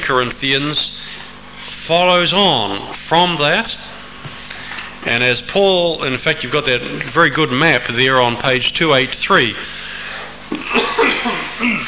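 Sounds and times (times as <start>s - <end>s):
speech: 0.1s - 1.0s, 1.9s - 3.9s, 5.0s - 9.8s
chesty coughing from a person getting over flu: 10.5s - 11.8s
throat clearing from a person with a congested chest: 10.5s - 11.8s.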